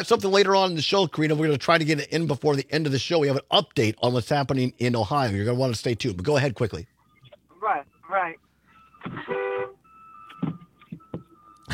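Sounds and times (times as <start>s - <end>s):
speech: 0.0s - 6.9s, 7.6s - 8.4s
car horn honking: 9.0s - 10.7s.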